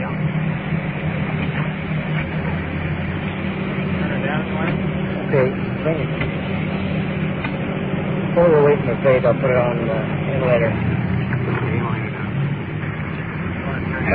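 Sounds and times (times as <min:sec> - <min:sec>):
large rescue truck engine idling: 0:00.0 - 0:14.1
voices murmuring: 0:00.0 - 0:14.1
speech: 0:08.4 - 0:11.0.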